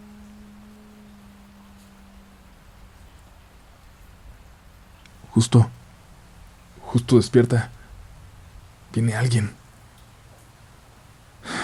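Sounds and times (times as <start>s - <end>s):
quiet hiss: 0.0s - 11.6s
speech: 5.4s - 5.8s, 6.9s - 7.8s, 8.9s - 9.6s
short loud snore: 11.4s - 11.6s.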